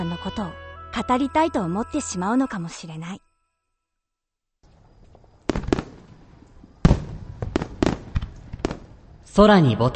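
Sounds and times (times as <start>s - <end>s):
speech: 0.1s - 3.3s, 9.4s - 9.9s
fireworks exploding: 4.8s - 9.4s.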